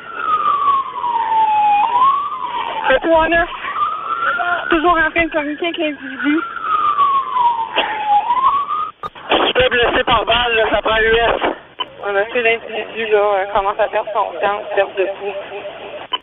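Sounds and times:
emergency vehicle siren wailing as if heard over a radio: 0.0s - 9.0s
steady noise: 0.0s - 16.2s
speech: 3.0s - 3.6s, 4.2s - 6.5s, 7.8s - 8.0s, 9.7s - 11.4s, 12.0s - 15.8s.

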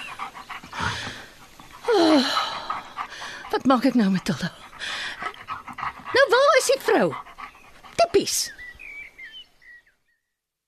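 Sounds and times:
small dog panting: 0.0s - 8.8s
speech: 3.6s - 5.0s, 6.7s - 7.3s, 8.1s - 8.6s.

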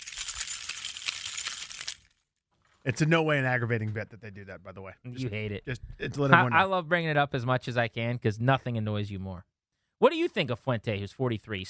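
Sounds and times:
keys jangling while being picked up: 0.0s - 2.2s
speech: 2.8s - 11.6s.

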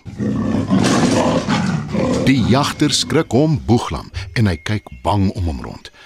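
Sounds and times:
leopard roaring in a pit half-covered with branches: 0.0s - 4.2s
speech: 2.3s - 5.9s.

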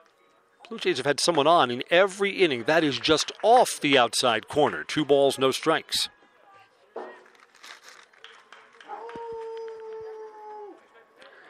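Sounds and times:
speech: 0.7s - 6.2s
dog howling in a backyard: 8.9s - 10.8s.

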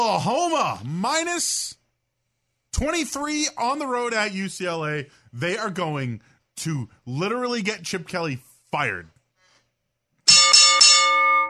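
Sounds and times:
speech: 0.0s - 1.8s, 2.8s - 9.1s
bell sound effect struck: 10.3s - 11.4s.

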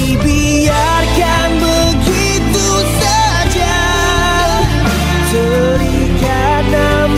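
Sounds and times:
Malay ballad with sustained instrumental backing: 0.0s - 7.1s.

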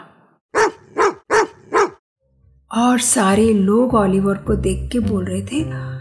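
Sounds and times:
dog barking loud and sharp: 0.5s - 2.0s
speech: 2.7s - 6.0s.

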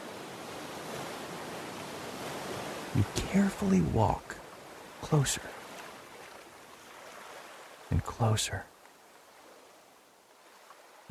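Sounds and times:
small waterfall plunging into a deep pool: 0.0s - 6.1s
speech: 3.0s - 4.4s, 5.0s - 5.6s, 7.9s - 8.7s.

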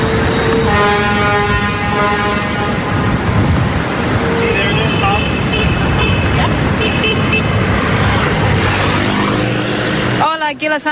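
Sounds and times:
car horns honking: 0.0s - 3.3s, 4.0s - 9.4s
car, truck and bus engines rumbling in New York City street traffic: 0.0s - 10.9s.

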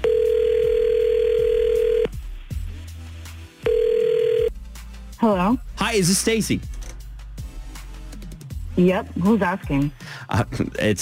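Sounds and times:
telephone ringback tone through a phone line: 0.0s - 2.2s, 3.6s - 4.5s
speech: 5.2s - 6.8s, 8.8s - 11.0s.

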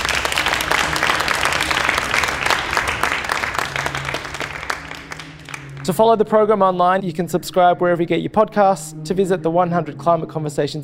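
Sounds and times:
audience applause: 0.0s - 5.9s
speech: 5.8s - 10.8s.

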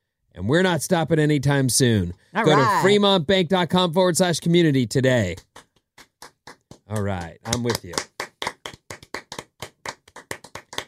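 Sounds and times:
speech: 0.4s - 5.6s, 6.9s - 8.1s
hands clapping: 5.2s - 10.8s.

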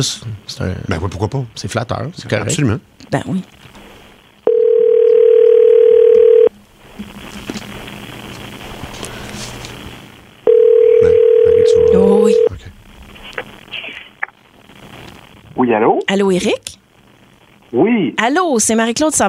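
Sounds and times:
speech: 0.0s - 3.6s, 12.0s - 12.5s, 15.6s - 16.8s, 17.7s - 19.2s
faint hiss: 0.0s - 19.2s
telephone dial tone while placing a call: 4.5s - 6.5s, 10.5s - 12.5s.

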